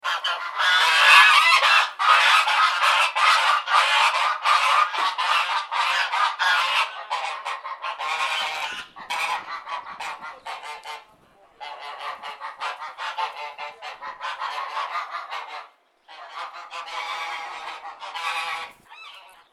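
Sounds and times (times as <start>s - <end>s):
ducks quacking: 0.0s - 19.5s.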